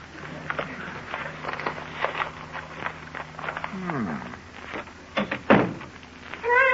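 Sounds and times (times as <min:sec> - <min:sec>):
faint hum: 0:00.0 - 0:06.7
newspaper thrown from a bicycle landing against a front door: 0:05.2 - 0:05.9.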